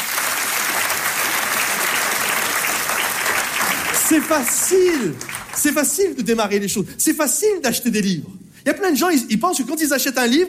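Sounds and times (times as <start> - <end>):
audience applause: 0.0 - 6.0
speech: 4.1 - 10.4.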